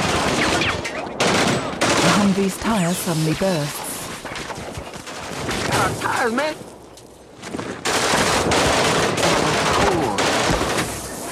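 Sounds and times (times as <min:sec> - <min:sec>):
heavy gunfire from a multi-barrel Russian anti-aircraft gun in a firefight around a Humvee: 0:00.0 - 0:06.5, 0:07.7 - 0:11.2
speech: 0:02.3 - 0:03.8, 0:05.8 - 0:06.7.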